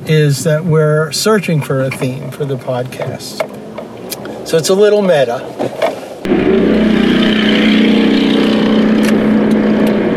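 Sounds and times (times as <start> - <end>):
speech: 0.1 - 3.6, 4.5 - 8.0
motorcycle engine droning with a low humming pitch: 5.9 - 10.1.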